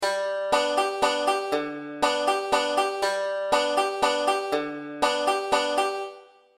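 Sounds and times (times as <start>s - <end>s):
five-string banjo playing a three-four roll: 0.0s - 6.3s.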